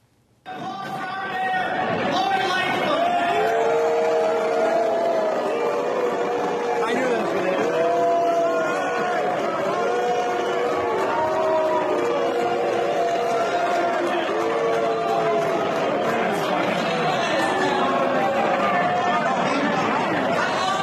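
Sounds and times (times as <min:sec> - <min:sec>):
large crowd of plumbers booing and jeering a speaker: 0:00.6 - 0:20.8.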